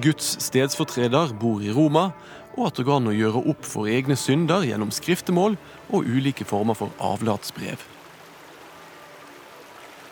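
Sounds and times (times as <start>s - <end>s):
speech: 0.0s - 8.0s
river water flowing: 2.2s - 10.1s.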